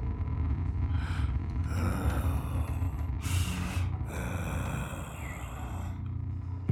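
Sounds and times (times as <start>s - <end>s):
low rumbling background: 0.0s - 6.7s
slow heavy rasping breathing: 0.9s - 6.1s.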